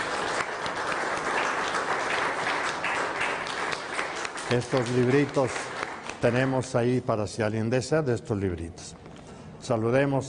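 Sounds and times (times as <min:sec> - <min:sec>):
crowd applauding: 0:00.0 - 0:06.8
speech: 0:04.5 - 0:09.0, 0:09.6 - 0:10.2.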